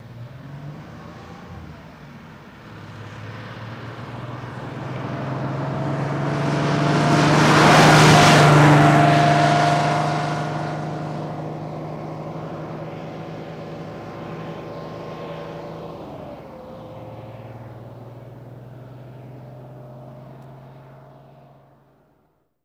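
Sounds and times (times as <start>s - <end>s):
fire truck passing by shifting gear: 0.0s - 22.2s.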